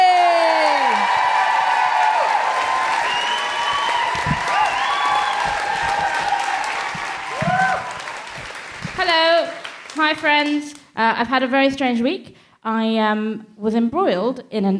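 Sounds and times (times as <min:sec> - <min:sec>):
audience whooping with scattered shouts and cheers: 0:00.0 - 0:08.8
large audience clapping: 0:00.1 - 0:10.6
speech: 0:10.4 - 0:14.7.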